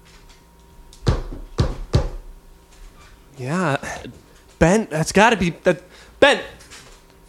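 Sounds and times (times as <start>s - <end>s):
knocks on wood behind a bookshelf: 1.0s - 2.2s
speech: 3.4s - 6.6s.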